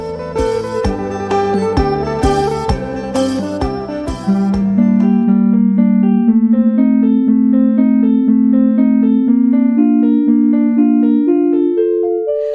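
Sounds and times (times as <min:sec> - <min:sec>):
rising synthesized melodic line from sonified carbon dioxide data: 0:00.0 - 0:12.5
synthesized percussive chordal hits: 0:00.4 - 0:05.6.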